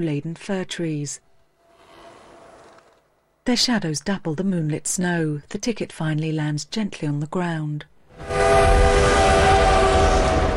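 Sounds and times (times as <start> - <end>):
speech: 0.0 - 1.3, 3.4 - 8.8
train rattling past on a track beyond snow-laden fir trees: 8.2 - 10.5.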